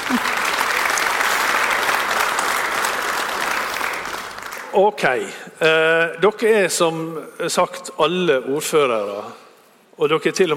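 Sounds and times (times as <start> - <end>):
audience applauding for a panel: 0.0 - 4.8
speech: 4.8 - 9.4, 10.0 - 10.5.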